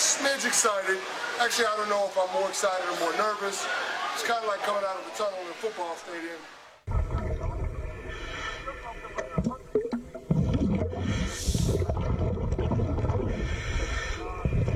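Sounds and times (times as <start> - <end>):
speech: 0.2 - 6.6
person breathing underwater in a shark tank: 6.9 - 14.7.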